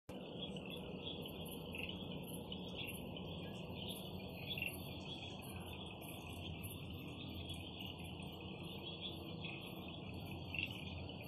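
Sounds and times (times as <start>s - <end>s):
beetles chirping at night: 0.2s - 11.2s.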